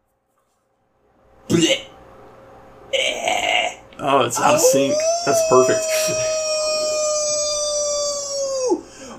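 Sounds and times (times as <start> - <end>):
speech: 1.5 - 1.9, 4.0 - 6.4
male dog howling: 4.4 - 8.8.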